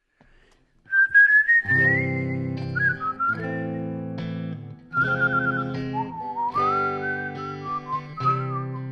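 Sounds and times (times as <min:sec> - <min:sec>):
person whistling a slow sliding melody: 0:00.9 - 0:04.0, 0:04.9 - 0:08.9
strummed guitar chords: 0:01.7 - 0:08.9.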